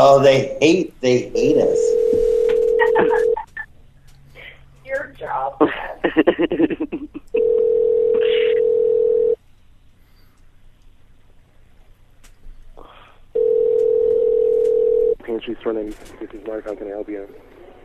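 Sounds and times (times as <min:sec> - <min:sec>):
speech: 0:00.0 - 0:02.1, 0:03.0 - 0:03.4, 0:15.3 - 0:17.5
telephone dial tone: 0:01.8 - 0:03.4, 0:07.4 - 0:09.4, 0:13.4 - 0:15.2
laughter: 0:02.8 - 0:03.6, 0:05.6 - 0:07.4.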